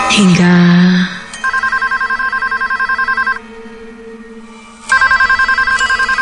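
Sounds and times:
speech: 0:00.1 - 0:01.1
karaoke venue telephone ringing with rapid electronic trilling by the cashier's desk: 0:01.3 - 0:03.4, 0:04.9 - 0:06.2.

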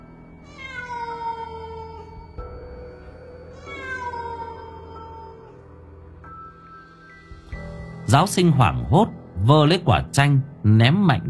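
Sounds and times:
black cat meowing: 0:00.4 - 0:02.2, 0:03.5 - 0:05.7
speech: 0:08.1 - 0:11.2.

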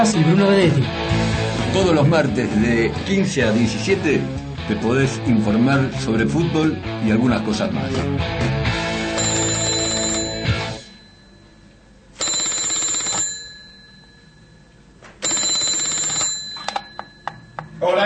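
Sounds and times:
speech: 0:00.0 - 0:08.8
telephone ringing in bright trilling bursts: 0:09.1 - 0:18.0.

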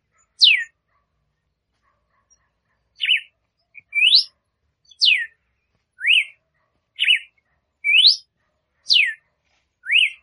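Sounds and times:
female red-cowled cardinal singing to stimulate the male: 0:00.4 - 0:00.7, 0:03.0 - 0:04.3, 0:04.9 - 0:05.4, 0:06.0 - 0:06.4, 0:07.0 - 0:08.3, 0:08.9 - 0:09.2, 0:09.8 - 0:10.2.

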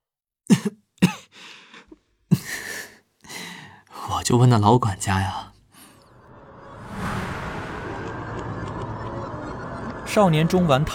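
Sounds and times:
person coughing while holding back laughter: 0:00.5 - 0:01.4
speech: 0:00.6 - 0:00.8, 0:04.3 - 0:05.5, 0:10.1 - 0:10.9.

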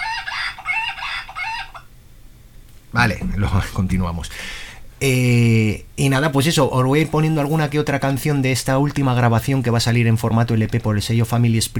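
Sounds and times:
rooster crowing: 0:00.0 - 0:01.9
speech: 0:02.9 - 0:11.7.

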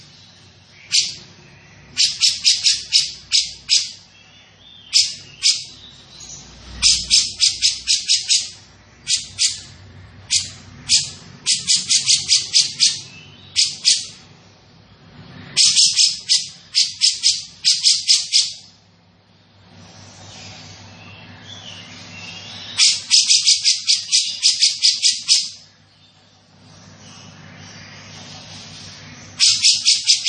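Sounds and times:
grey-cheeked bulbul chattering: 0:00.8 - 0:01.3, 0:01.9 - 0:06.0, 0:06.6 - 0:14.3, 0:15.5 - 0:18.7, 0:21.8 - 0:25.7, 0:29.3 - 0:30.2.

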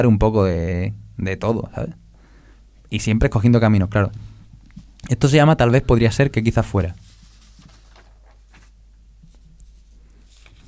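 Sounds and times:
speech: 0:00.0 - 0:02.0, 0:02.9 - 0:04.3, 0:05.1 - 0:07.0
papers rustling and shuffling as they are handled: 0:06.6 - 0:10.6.

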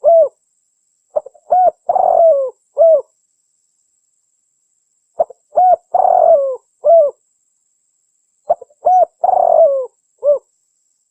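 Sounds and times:
spotted dove cooing: 0:00.0 - 0:00.4, 0:01.2 - 0:03.1, 0:05.2 - 0:07.2, 0:08.5 - 0:10.5.

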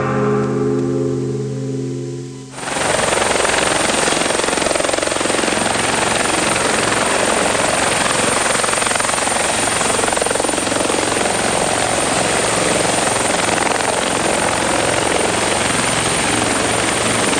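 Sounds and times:
music: 0:00.0 - 0:02.6
helicopter rotor and engine roar: 0:00.0 - 0:17.3.

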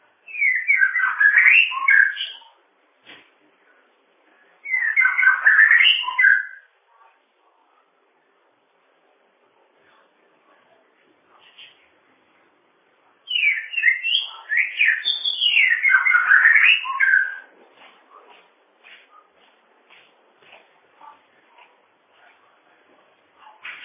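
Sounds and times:
bird song: 0:00.3 - 0:02.6, 0:04.6 - 0:06.7, 0:13.3 - 0:17.5.

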